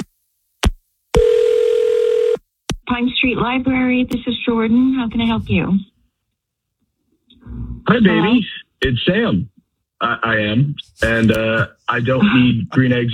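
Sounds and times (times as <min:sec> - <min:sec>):
steady electronic tone on a phone line: 0:01.2 - 0:02.4
speech: 0:03.0 - 0:05.9, 0:07.9 - 0:13.1
person speaking over a phone line: 0:07.9 - 0:09.3, 0:10.0 - 0:13.1.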